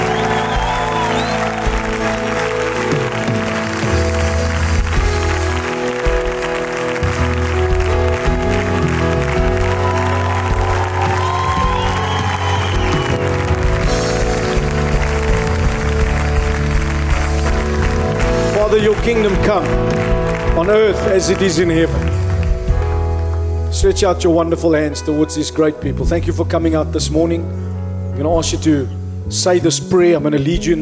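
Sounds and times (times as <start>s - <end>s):
audience cheering and clapping: 0.0s - 23.4s
sustained instrumental music: 0.0s - 30.8s
speech: 18.8s - 19.8s, 20.7s - 22.1s, 23.8s - 30.8s.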